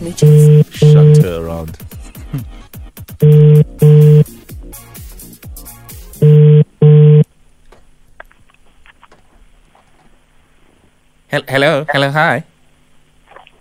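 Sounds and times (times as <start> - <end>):
speech: 0.0 - 3.7, 11.5 - 12.5
phone ringback tone in double-ring bursts: 0.2 - 1.2, 3.2 - 4.3, 6.2 - 7.2
faint clatter: 7.6 - 11.0.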